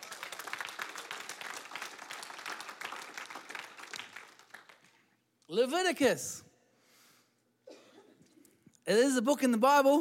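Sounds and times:
church audience clapping: 0.0s - 5.2s
speech: 5.5s - 6.4s, 8.9s - 9.9s.

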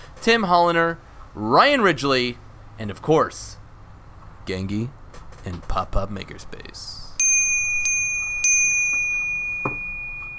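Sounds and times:
speech: 0.2s - 3.6s, 4.5s - 7.0s
bell ringing: 7.2s - 10.3s.

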